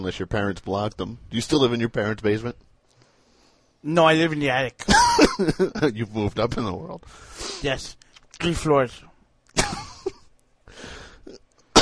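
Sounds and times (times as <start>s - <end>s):
speech: 0.0s - 2.7s, 3.8s - 9.9s
person coughing in a harsh fit: 4.8s - 5.6s, 9.6s - 10.2s, 11.2s - 11.7s.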